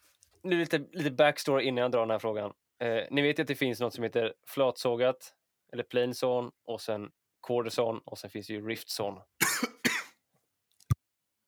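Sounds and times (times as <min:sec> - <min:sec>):
speech: 0:00.4 - 0:09.8
harsh person coughing: 0:09.4 - 0:10.2.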